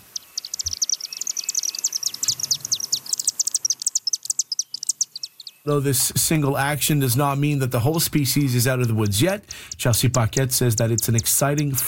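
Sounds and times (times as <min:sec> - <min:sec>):
dense flock of chimney swifts chittering at a chimney roost near Magog, Canada: 0:00.0 - 0:11.8
speech: 0:05.6 - 0:11.8.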